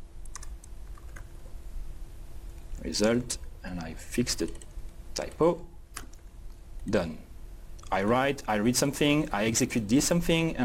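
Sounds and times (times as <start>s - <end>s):
steady low hum: 0.0s - 10.6s
typing on a computer keyboard: 0.2s - 1.3s
speech: 2.8s - 5.7s, 6.8s - 7.3s, 7.9s - 10.6s.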